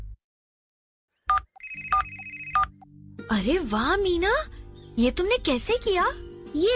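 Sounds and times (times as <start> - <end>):
mobile phone ringtone with bright electronic beeps and synthetic melody: 1.3 - 2.9
speech: 3.3 - 6.7.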